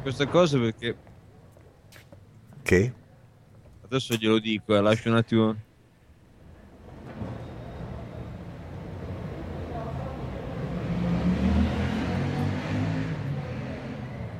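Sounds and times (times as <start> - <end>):
speech: 0.0 - 1.1, 2.7 - 3.0, 3.9 - 5.7
street traffic of cars: 0.0 - 14.3
motor van engine passing: 6.8 - 14.3.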